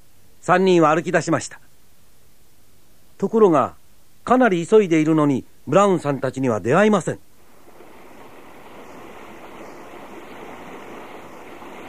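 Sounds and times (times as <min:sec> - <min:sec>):
speech: 0:00.5 - 0:01.7, 0:03.2 - 0:07.3
river water rushing: 0:07.4 - 0:11.8.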